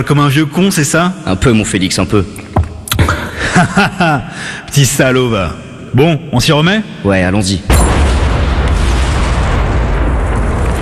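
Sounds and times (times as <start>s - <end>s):
speech: 0.0s - 2.5s, 3.1s - 8.0s
laughter: 3.0s - 4.4s
deep rumbling roar from a mine explosion in mountain country: 7.7s - 10.8s.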